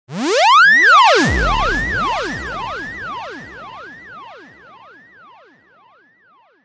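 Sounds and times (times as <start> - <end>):
deep echoing zwoop bend science fiction effect: 0.2 - 4.7.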